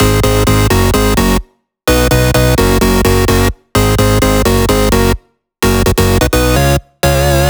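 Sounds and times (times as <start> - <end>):
128 BPM electronic melody: 0.0 - 7.4.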